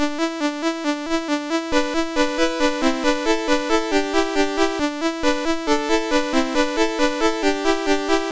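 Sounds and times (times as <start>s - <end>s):
MOS 6581 SID chip game music: 0.0s - 8.2s.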